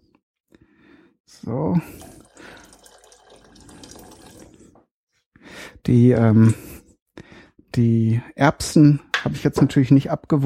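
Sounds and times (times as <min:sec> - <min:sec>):
speech: 0:01.3 - 0:02.1, 0:05.9 - 0:06.7, 0:07.8 - 0:10.4
cold soup stock pouring into a cooking pot: 0:01.8 - 0:04.8.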